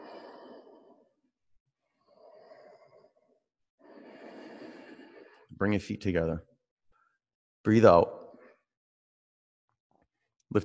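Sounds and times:
ujjayi breaths drawn through a constricted throat: 0.0s - 1.2s, 2.0s - 5.5s
speech: 5.6s - 6.5s, 7.6s - 8.2s.

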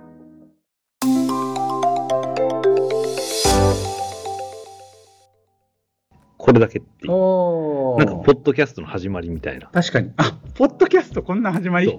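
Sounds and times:
bright melodic notes: 1.0s - 5.2s
electronic jingle built from a phone dialing tone: 1.0s - 5.2s
speech: 6.5s - 11.9s.

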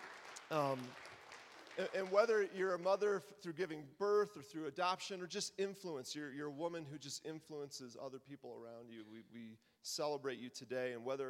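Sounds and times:
audience clapping and cheering: 0.0s - 2.6s
speech: 0.5s - 1.1s, 1.8s - 11.2s.

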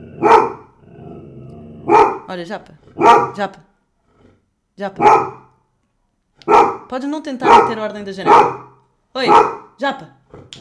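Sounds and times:
dog barking loud and close: 0.0s - 0.8s, 1.8s - 2.3s, 3.0s - 3.4s, 5.0s - 5.6s, 6.4s - 9.8s
speech: 2.3s - 3.7s, 4.8s - 5.4s, 6.9s - 10.6s.

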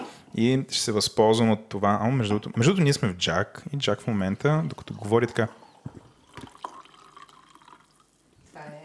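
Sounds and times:
speech: 0.4s - 6.0s
soft drips of wine: 4.5s - 8.6s
wine pouring into a glass in a house: 4.6s - 8.4s.

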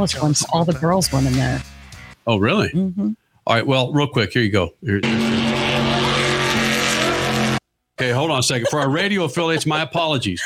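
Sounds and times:
speech: 0.0s - 1.7s, 2.3s - 5.5s, 8.0s - 10.4s
race car engine roaring: 5.0s - 7.6s
race car tires squealing and skidding: 5.0s - 7.6s
laughter: 8.1s - 10.4s.

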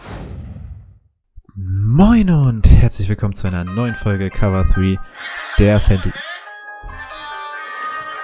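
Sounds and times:
speech: 1.6s - 6.3s
mobile phone ringing: 3.5s - 8.2s.

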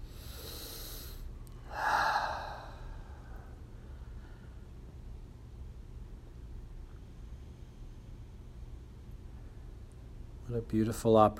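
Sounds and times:
person breathing deeply: 0.0s - 4.7s
speech: 10.5s - 11.3s.

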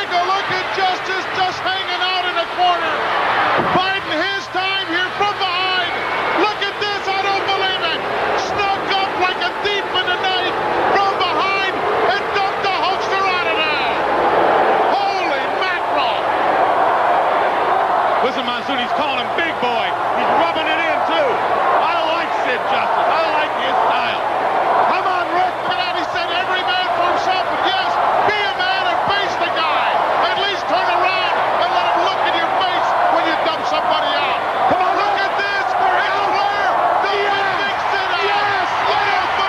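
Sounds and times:
packed arena crowd roaring and chanting: 0.0s - 39.4s
scattered shouts in an arena crowd: 0.0s - 39.4s.

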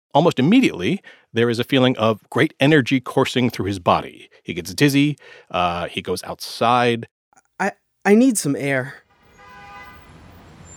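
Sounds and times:
speech: 0.1s - 9.0s
low rumble of road noise: 9.0s - 10.7s
car horn long steady honk: 9.1s - 10.7s.

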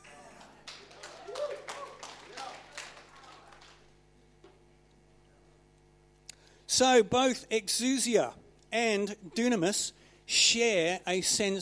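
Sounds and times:
audience applause: 0.0s - 4.0s
speech: 6.8s - 11.6s.

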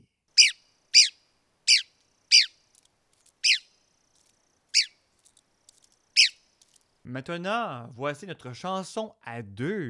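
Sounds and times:
southeastern US pine-forest bird calling: 0.4s - 6.8s
speech: 7.1s - 9.8s.

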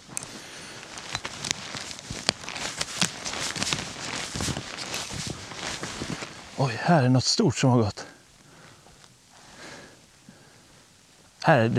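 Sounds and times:
footsteps of a person walking outdoors: 0.0s - 6.9s
speech: 6.6s - 8.0s, 11.4s - 11.7s.

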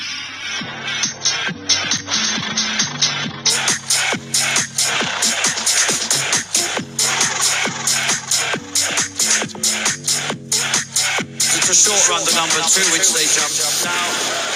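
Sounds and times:
energetic dance remix with four-on-the-floor beat and bright synths: 0.0s - 14.5s
chopped horse-racing commentary voice samples: 11.5s - 14.2s.

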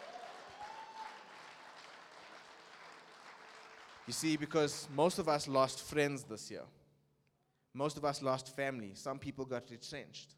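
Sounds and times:
cheer or whoop: 0.0s - 3.6s
crowd clapping: 0.0s - 5.4s
speech: 4.1s - 6.8s, 7.7s - 10.3s.

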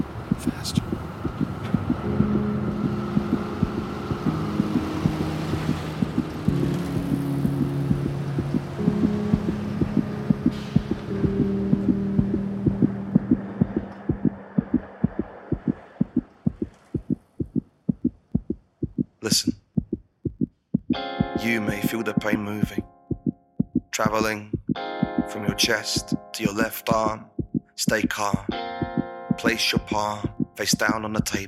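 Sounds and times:
droning tones: 0.0s - 17.6s
heavy thumping heartbeat: 0.0s - 31.4s
speech: 21.5s - 22.9s, 24.0s - 28.7s, 29.4s - 31.4s.

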